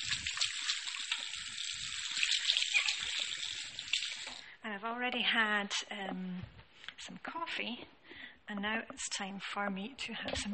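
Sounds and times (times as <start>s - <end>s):
tap water running in a sink: 0.0s - 4.4s
speech: 4.7s - 10.5s.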